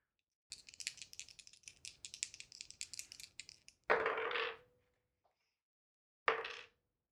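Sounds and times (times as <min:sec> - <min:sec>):
many dice rolled for damage in a tabletop role-playing game: 0:00.5 - 0:03.9
dice tumbling onto a hard surface: 0:00.5 - 0:04.5.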